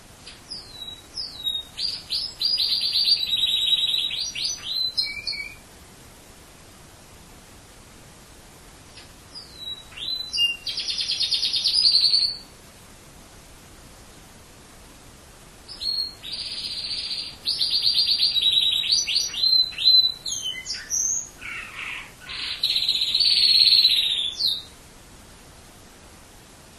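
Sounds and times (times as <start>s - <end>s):
pet canary singing: 0.2s - 5.6s, 9.3s - 12.5s, 15.7s - 24.8s.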